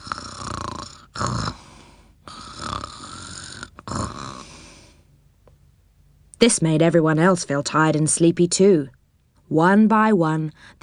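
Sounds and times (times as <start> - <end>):
gentle snoring: 0.0 - 5.0
speech: 6.4 - 10.8.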